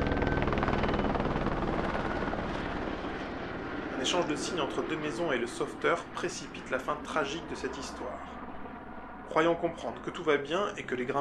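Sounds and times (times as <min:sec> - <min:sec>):
rescue helicopter rotor thumping near a mountain rock face: 0:00.0 - 0:04.4
speech: 0:04.0 - 0:08.4, 0:09.3 - 0:11.1.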